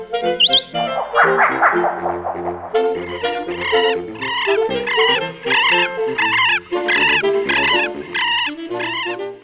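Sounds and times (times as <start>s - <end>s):
brief whistled note of a moustached turca: 0.4s - 4.6s
moustached turca calling: 0.4s - 9.2s.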